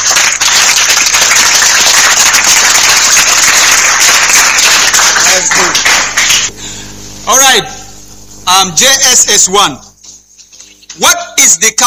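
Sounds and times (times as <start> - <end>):
crowd applauding: 0.0 - 6.5
speech: 7.6 - 7.8, 8.6 - 9.9.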